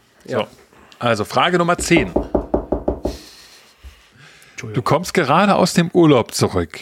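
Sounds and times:
speech: 0.2 - 2.2, 4.6 - 6.7
knocking on a hard surface: 1.8 - 3.2.

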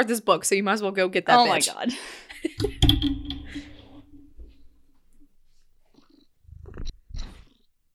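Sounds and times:
speech: 0.0 - 3.0
cat purring: 5.5 - 7.7.

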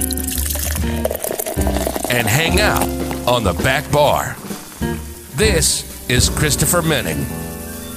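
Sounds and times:
liquid pouring into a glass: 0.0 - 5.4
speech: 2.2 - 7.5.

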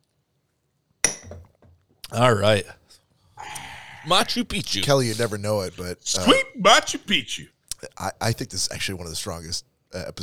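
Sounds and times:
shot glasses clinking in a toast: 1.0 - 1.6
speech: 2.1 - 2.8, 3.4 - 10.2.

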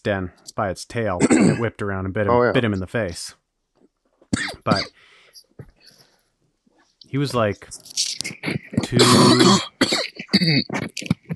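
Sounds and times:
speech: 0.0 - 3.4, 4.4 - 5.1, 7.1 - 11.3
breathy throat clearing: 1.2 - 1.7, 4.4 - 4.9, 8.5 - 11.3
person coughing: 1.2 - 1.7, 4.4 - 4.9, 8.4 - 10.9.

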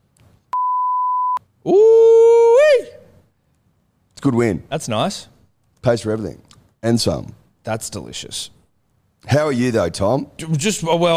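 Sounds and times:
steady loud electronic censor beep: 0.5 - 1.4
speech: 1.6 - 1.9, 4.2 - 8.6, 9.2 - 11.1.

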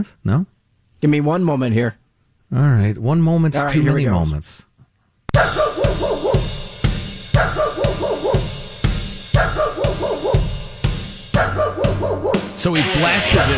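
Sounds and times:
speech: 0.0 - 4.7, 5.3 - 6.5, 12.0 - 13.5
recording of a neighbor's dog barking played back loudly: 5.3 - 6.6, 7.4 - 8.6, 9.3 - 10.6, 11.4 - 12.5.

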